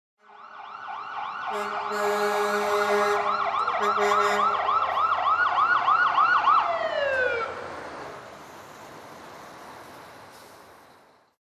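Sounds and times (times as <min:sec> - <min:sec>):
approaching fire truck horn: 0:00.2 - 0:00.6, 0:01.3 - 0:05.1
approaching fire truck siren: 0:00.2 - 0:10.3.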